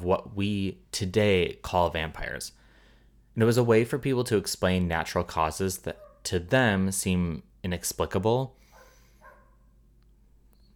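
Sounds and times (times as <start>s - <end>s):
speech: 0.0s - 2.6s, 3.4s - 8.6s
low steady hum: 0.0s - 10.7s
German Shepherd dog barking outdoors: 5.9s - 6.3s, 8.6s - 9.8s.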